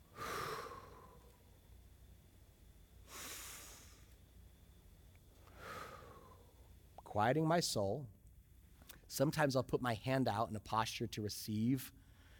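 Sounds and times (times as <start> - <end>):
slow deliberate breathing for prayer practice: 0.0 - 1.6, 3.0 - 4.2, 5.4 - 6.8
speech: 7.1 - 8.2, 9.1 - 12.0.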